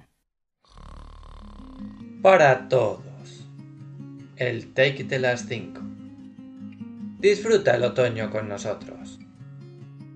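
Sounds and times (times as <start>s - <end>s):
loud rasping snore: 0.6s - 2.2s
speech: 2.2s - 3.1s, 4.4s - 5.9s, 7.2s - 9.2s.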